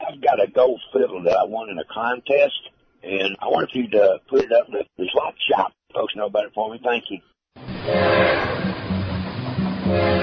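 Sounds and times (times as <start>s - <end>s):
speech: 0.2s - 8.7s
train rumbling: 7.6s - 10.2s.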